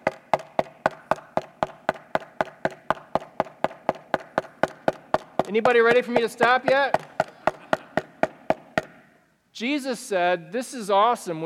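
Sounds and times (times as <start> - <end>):
steady rapid knocking: 0.0 - 9.0
speech: 5.5 - 7.0, 9.6 - 11.4.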